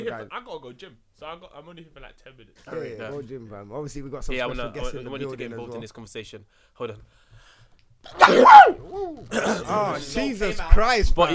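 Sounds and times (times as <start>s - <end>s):
speech: 0.0s - 11.3s
loud sneeze: 8.1s - 9.2s.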